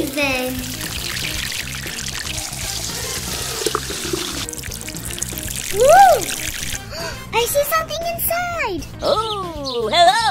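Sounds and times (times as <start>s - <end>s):
water poured steadily to melt ice: 0.0s - 7.2s
speech: 5.7s - 6.4s, 7.3s - 10.2s.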